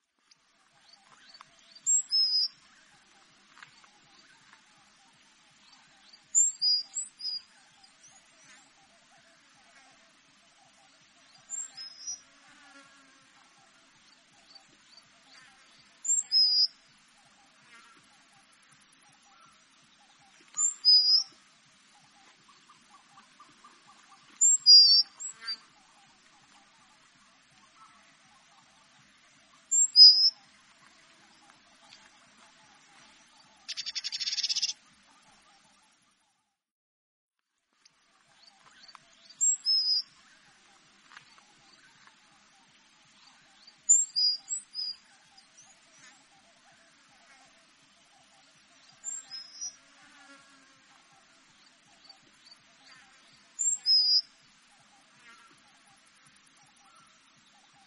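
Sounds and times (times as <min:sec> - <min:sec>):
peito celeste de face carmesim bird singing: 0:00.3 - 0:36.4, 0:38.0 - 0:57.8.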